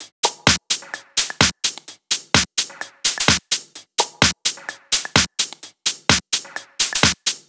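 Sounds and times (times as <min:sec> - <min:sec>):
tech house drums at 128 BPM: 0:00.0 - 0:07.4.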